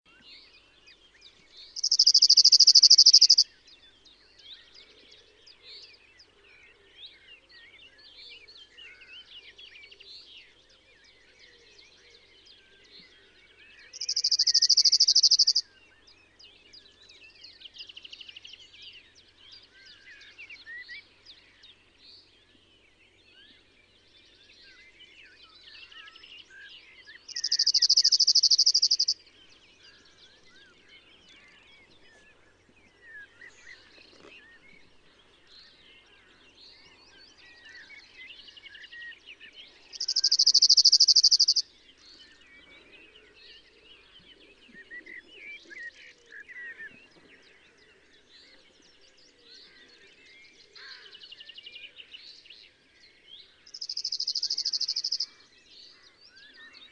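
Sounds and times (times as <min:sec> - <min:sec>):
cirl bunting singing: 0:00.0 - 0:56.9.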